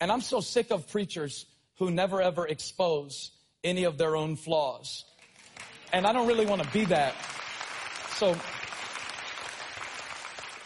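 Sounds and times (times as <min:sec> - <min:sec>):
speech: 0:00.0 - 0:05.1, 0:05.9 - 0:07.5, 0:08.2 - 0:08.6
audience applause during a preacher's talk: 0:05.4 - 0:10.6.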